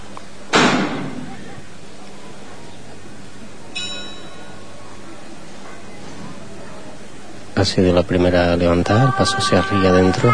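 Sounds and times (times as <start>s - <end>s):
quiet outdoor ambience: 0.0s - 10.3s
church bell tolling: 3.8s - 4.6s
faint metallic chime: 3.8s - 4.7s
speech: 7.6s - 10.3s.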